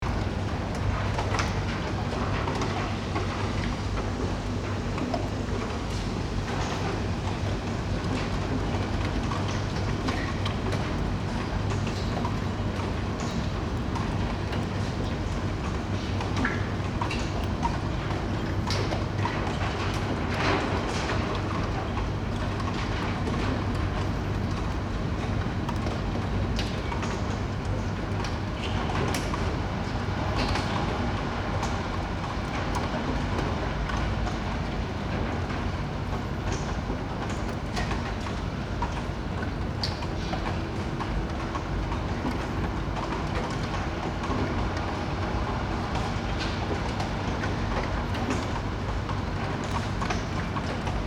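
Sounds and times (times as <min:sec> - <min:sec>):
dripping rain in a Shanghai suburb: 0:00.0 - 0:51.0.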